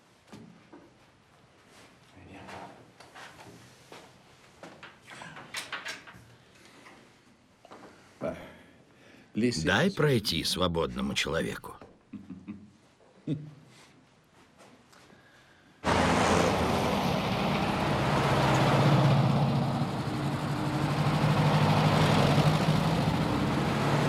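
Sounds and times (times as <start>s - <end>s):
speech: 9.4s - 11.8s
military trucks driving along a road: 15.8s - 24.0s.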